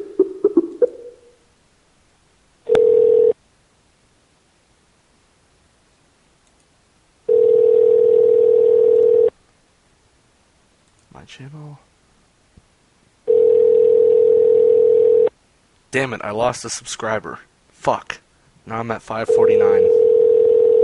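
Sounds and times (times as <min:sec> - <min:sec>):
electronic telephone call tone beeps: 0:02.7 - 0:03.4, 0:07.3 - 0:09.3, 0:13.3 - 0:15.3, 0:19.3 - 0:20.8
quick clicks: 0:06.4 - 0:06.7, 0:10.8 - 0:11.1
speech: 0:11.3 - 0:11.9, 0:15.9 - 0:19.8.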